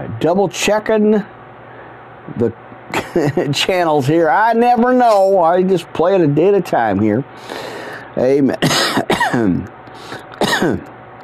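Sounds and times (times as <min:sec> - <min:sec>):
speech: 0:00.1 - 0:01.4, 0:02.3 - 0:09.8, 0:10.6 - 0:11.0
person coughing with a persistent cough: 0:08.6 - 0:10.9.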